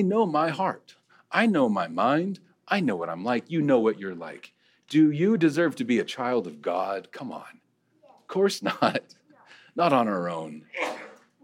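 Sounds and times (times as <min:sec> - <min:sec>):
speech: 0:00.0 - 0:07.6, 0:08.3 - 0:09.2, 0:09.8 - 0:11.1
person sneezing in an audience: 0:10.7 - 0:11.4.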